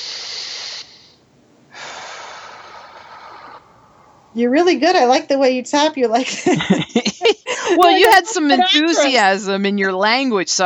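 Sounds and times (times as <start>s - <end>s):
deep breaths during a tapping exercise session: 0.0s - 4.4s
speech: 4.4s - 10.6s
laughter: 6.2s - 9.2s.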